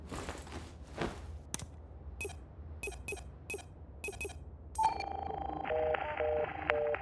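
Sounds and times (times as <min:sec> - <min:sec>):
footsteps inside a shrine on a mountain: 0:00.0 - 0:01.6
phone beeping tones of a call attempt: 0:02.2 - 0:06.9.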